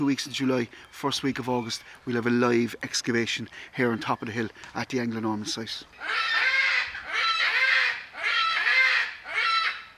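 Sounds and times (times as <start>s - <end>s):
speech: 0.0s - 6.5s
young peregrine falcon crying in long harsh wailing calls: 5.9s - 9.9s.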